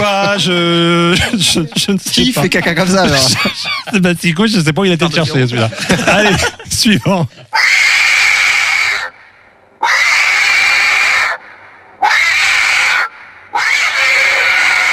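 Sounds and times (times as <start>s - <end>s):
laughter: 0.0s - 4.3s, 4.9s - 7.6s
speech: 0.0s - 7.8s
pig squealing as it is slaughtered: 7.5s - 9.2s, 9.8s - 11.4s, 12.0s - 14.9s.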